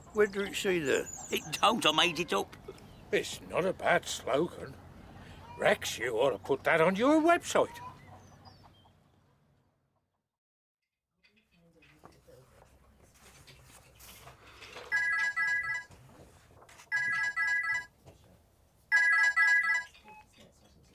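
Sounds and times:
speech: 0.2 - 4.8, 5.6 - 7.9
telephone ringing in electronic bursts: 14.9 - 15.9, 16.9 - 17.9, 18.9 - 20.2.

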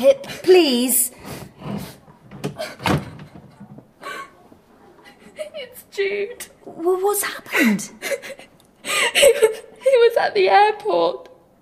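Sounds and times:
speech: 0.0 - 1.1, 6.0 - 8.5, 9.1 - 11.3
door thud: 2.3 - 3.8.

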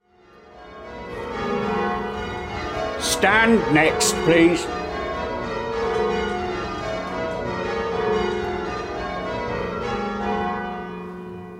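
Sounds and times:
church bells pealing as ringers work through a change: 0.0 - 11.5
speech: 3.0 - 4.8.

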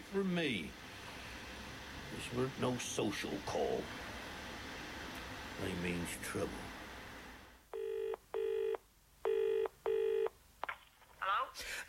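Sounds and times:
speech: 0.1 - 0.8, 2.1 - 4.1, 5.6 - 6.7
telephone being dialled in a phone box, buzzy electronic tones: 7.8 - 10.3.

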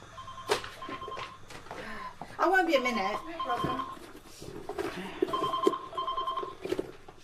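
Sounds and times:
telephone ringing with an electronic warble: 0.0 - 1.5, 3.1 - 4.1, 5.0 - 6.8
faint hum: 0.0 - 7.2
speech: 2.4 - 4.0.

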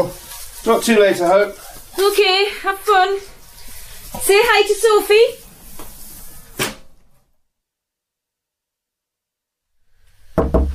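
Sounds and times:
speech: 0.0 - 3.3, 4.1 - 5.4
single thump: 6.6 - 6.8, 10.4 - 10.7
sharp knocks on a door: 10.4 - 10.7.

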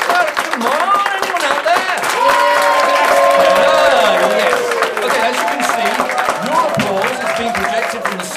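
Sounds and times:
large audience applauding during a clapometer test run: 0.0 - 8.3
whoops and cheering voices: 2.0 - 8.3.

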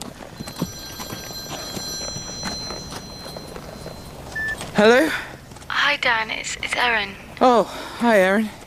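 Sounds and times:
horse's hooves clip-clopping: 0.0 - 6.3
mobile phone ringing with a high electronic tone: 0.3 - 5.0
speech: 4.8 - 5.2, 5.9 - 8.6.

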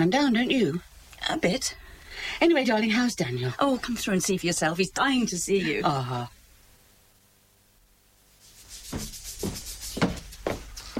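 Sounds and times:
speech: 0.0 - 6.4, 8.9 - 9.6
sanding down a small bump in plaster: 8.4 - 10.3.

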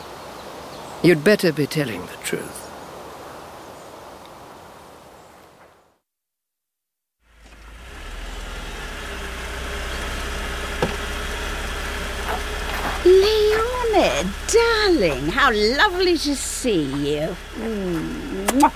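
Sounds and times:
speech: 1.0 - 2.6, 14.2 - 18.7
car engine idling: 7.2 - 18.7.

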